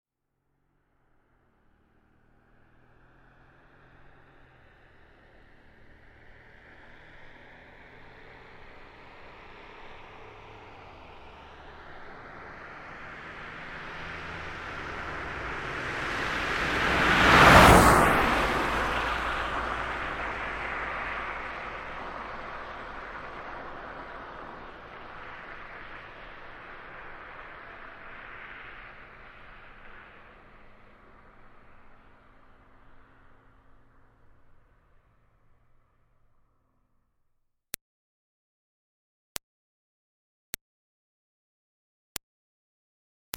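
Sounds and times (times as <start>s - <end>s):
2005 Smartcar Fortwo passing by fast: 0.7s - 33.8s.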